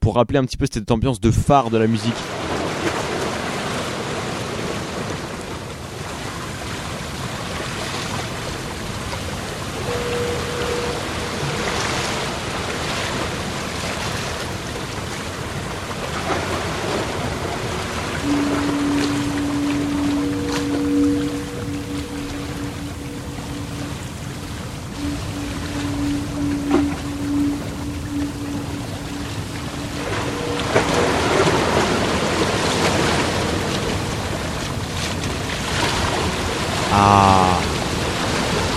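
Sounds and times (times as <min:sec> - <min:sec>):
speech: 0:00.0 - 0:02.6
wind in a harbor: 0:01.6 - 0:38.7
low sustained boat tone: 0:08.2 - 0:38.7
water washing in a harbor: 0:08.7 - 0:36.9.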